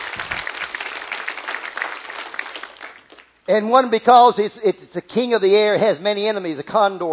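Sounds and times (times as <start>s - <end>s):
audience clapping: 0.0s - 3.4s
speech: 3.5s - 7.1s.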